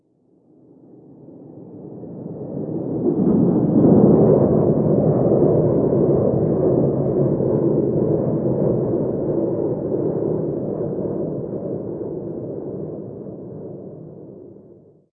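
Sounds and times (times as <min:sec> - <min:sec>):
jet flyover heard from indoors: 0:00.8 - 0:14.6.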